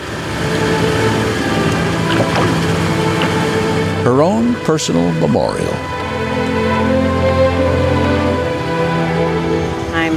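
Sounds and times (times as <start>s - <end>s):
boat engine droning on bay water: 0.0s - 10.1s
water washing around a boat: 0.4s - 4.3s
speech: 4.0s - 6.0s.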